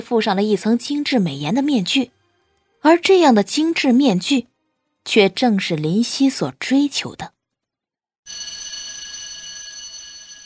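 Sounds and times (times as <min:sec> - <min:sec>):
speech: 0:00.0 - 0:02.2, 0:02.8 - 0:07.4
school bell ringing for end of class: 0:08.3 - 0:10.4.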